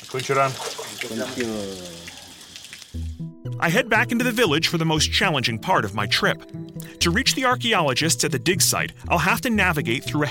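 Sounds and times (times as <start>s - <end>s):
water pouring over a rock used as a shower: 0.0s - 3.0s
speech: 0.1s - 2.2s, 2.9s - 10.2s
man making drawn-out wordless vocal sounds: 0.3s - 2.2s, 3.5s - 10.2s.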